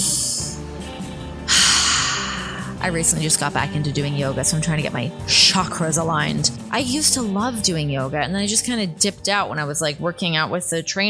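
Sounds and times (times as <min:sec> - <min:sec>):
deep breath in and out: 0:01.5 - 0:02.8
speech: 0:02.8 - 0:11.0.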